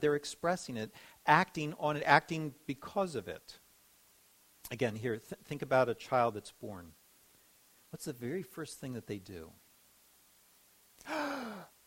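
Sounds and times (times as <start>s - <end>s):
speech: 0.0s - 3.6s, 4.7s - 7.0s, 7.9s - 9.6s, 11.0s - 11.7s
deep audible breath drawn in: 1.0s - 1.2s, 11.0s - 11.7s.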